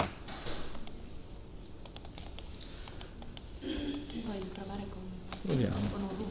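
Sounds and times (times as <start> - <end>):
computer mouse clicks: 0.7 - 1.0, 1.6 - 5.4
speech: 4.3 - 6.2.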